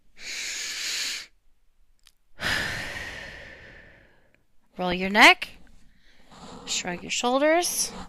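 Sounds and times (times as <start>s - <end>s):
deep breaths taken as a calming technique: 0.0s - 1.4s, 2.4s - 4.5s, 5.5s - 8.0s
speech: 4.8s - 5.6s, 6.7s - 8.0s.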